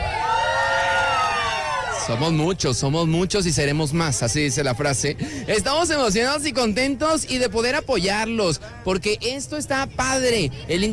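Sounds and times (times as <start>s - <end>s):
crowd shouting and cheering at a lively gathering: 0.0s - 2.8s
speech: 2.1s - 10.9s.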